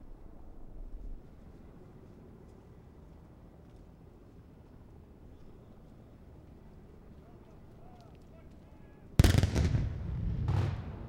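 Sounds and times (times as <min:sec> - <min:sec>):
heavy cannon blast from a fortress salute battery: 0:09.2 - 0:11.0.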